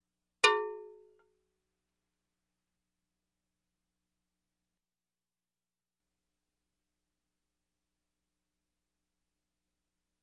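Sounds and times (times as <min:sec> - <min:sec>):
cow bell on a cow's neck struck: 0:00.4 - 0:01.0.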